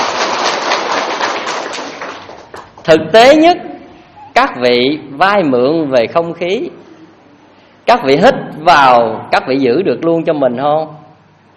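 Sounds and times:
audience applause at a Buddhist dharma talk: 0.0 - 2.8
speech: 2.9 - 3.7, 4.4 - 6.9, 7.9 - 11.0.

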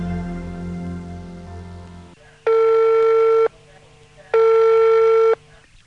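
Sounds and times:
telephone ringback tones on a call: 2.5 - 3.5, 4.4 - 5.4.

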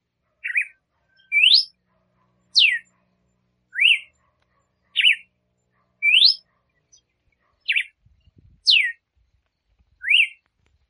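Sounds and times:
female red-cowled cardinal singing whistled phrases: 0.4 - 1.8, 2.6 - 2.9, 3.7 - 4.2, 5.0 - 5.3, 6.0 - 7.0, 7.6 - 7.9, 8.6 - 9.0, 10.0 - 10.4.

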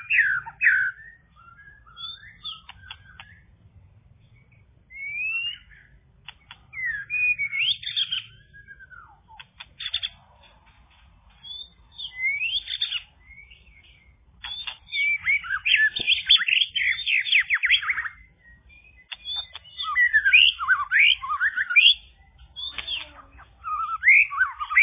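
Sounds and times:
bird sweeping whistles, slurred notes and rapid chatters: 0.0 - 3.5, 4.4 - 10.2, 11.4 - 24.8.

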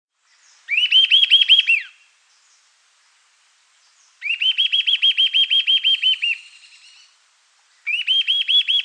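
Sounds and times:
Eastern sirystes Sirystes sibilator giving fast repeated whistled notes: 0.7 - 2.0, 4.2 - 7.1, 7.8 - 8.8.

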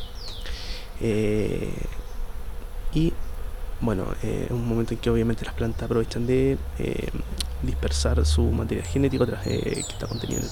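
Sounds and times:
chirps: 0.0 - 2.2, 4.5 - 10.5
bees buzzing among yellow pompom-like flowers of a blossoming tree: 0.0 - 10.5
noise: 0.0 - 10.5
speech: 1.0 - 1.9, 2.9 - 10.5.

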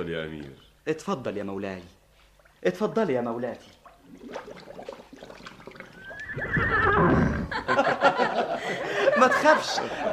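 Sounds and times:
speech: 0.0 - 2.0, 2.6 - 4.7, 9.2 - 10.1
saddled horse snorting: 4.1 - 7.6
saddled horse whinnying and neighing: 5.8 - 7.6
laughter: 7.0 - 10.1.

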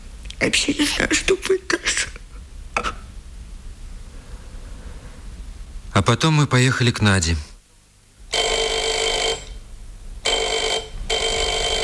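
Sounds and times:
speech: 0.4 - 2.2, 6.0 - 7.5
telephone ringing at night: 8.3 - 9.6, 10.2 - 11.8.

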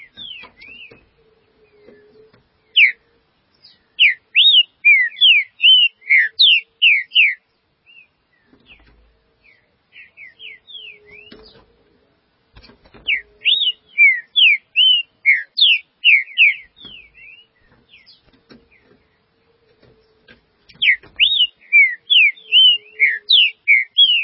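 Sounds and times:
green-winged saltator singing loud slurred whistles: 2.7 - 3.0, 3.6 - 8.1, 10.0 - 11.6, 13.1 - 18.2, 20.7 - 24.2.

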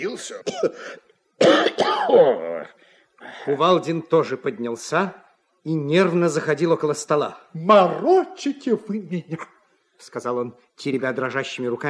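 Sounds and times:
speech: 0.0 - 11.8
man coughing and clearing his throat: 0.4 - 2.4.

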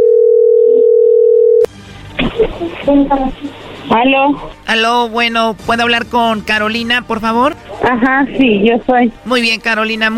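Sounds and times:
telephone dial tone before a call: 0.0 - 1.7
speech: 2.8 - 10.1.

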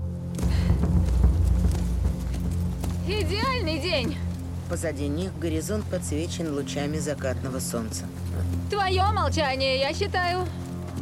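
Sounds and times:
hooves of a horse led by the reins clopping: 0.0 - 11.0
speech: 3.1 - 10.6.

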